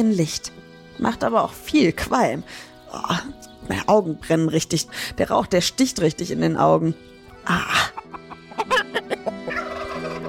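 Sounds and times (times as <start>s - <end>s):
speech: 0.0s - 8.0s
poultry calling inside a medieval peasant farmhouse: 7.3s - 10.2s.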